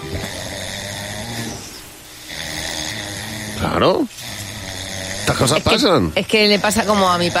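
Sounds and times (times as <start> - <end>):
man snoring loudly: 0.0 - 7.3
speech: 3.7 - 4.2, 5.3 - 7.3.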